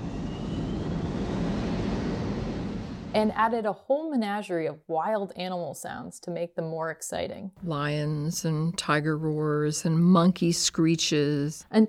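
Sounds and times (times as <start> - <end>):
unprocessed jet aircraft roar: 0.0 - 3.4
speech: 3.1 - 11.8.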